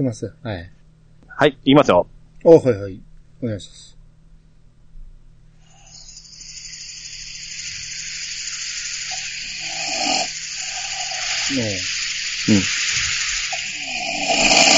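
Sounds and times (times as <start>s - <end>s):
speech: 0.0s - 0.8s, 1.4s - 4.0s, 11.5s - 12.9s
hiss: 0.0s - 14.7s
person imitating loud snoring with a rough, rattling voice: 9.6s - 14.7s.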